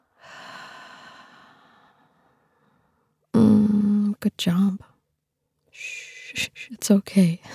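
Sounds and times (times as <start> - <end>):
slow deep airy breath in and out: 0.0 - 3.2
speech: 4.2 - 4.9, 5.8 - 7.5.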